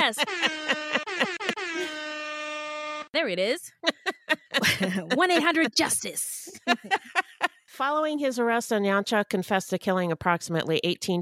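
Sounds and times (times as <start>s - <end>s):
laughter: 0.0s - 2.0s, 3.7s - 7.5s
hip hop air horn sound effect blaring: 0.0s - 3.3s
speech: 0.1s - 0.8s, 3.2s - 7.1s, 7.8s - 11.1s.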